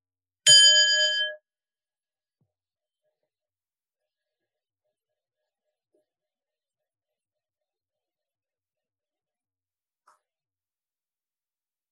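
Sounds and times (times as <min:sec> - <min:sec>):
single bell struck once: 0:00.5 - 0:01.4.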